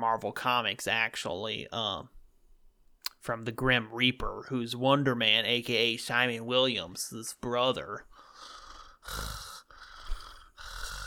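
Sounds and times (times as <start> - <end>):
speech: 0.0 - 2.2, 3.2 - 9.4
heavy nasal breathing into a microphone: 8.1 - 11.0.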